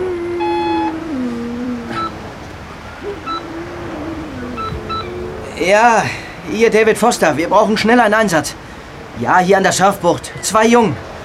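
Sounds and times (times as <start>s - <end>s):
constant rushing noise: 0.0s - 11.2s
electronic phone dialing and ringing tones: 4.6s - 5.1s
speech: 5.6s - 8.6s, 9.2s - 11.1s.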